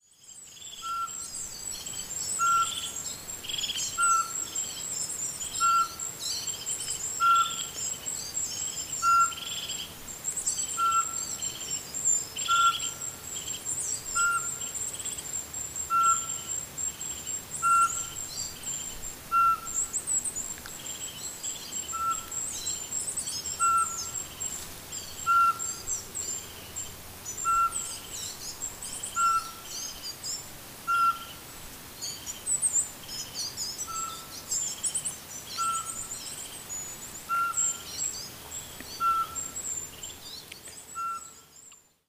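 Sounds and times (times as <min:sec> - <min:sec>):
birdsong: 0:00.0 - 0:42.0
Eurasian pygmy owl calling: 0:00.8 - 0:01.3, 0:02.4 - 0:04.6, 0:05.4 - 0:06.1, 0:07.2 - 0:07.8, 0:09.0 - 0:09.8, 0:10.6 - 0:11.5, 0:12.4 - 0:13.2, 0:14.1 - 0:14.7, 0:15.9 - 0:16.6, 0:17.6 - 0:18.3, 0:19.2 - 0:20.0, 0:21.9 - 0:22.5, 0:23.4 - 0:24.3, 0:25.0 - 0:26.5, 0:27.3 - 0:28.1, 0:28.9 - 0:30.1, 0:30.8 - 0:31.4, 0:33.8 - 0:34.5, 0:35.5 - 0:39.9, 0:40.9 - 0:41.4.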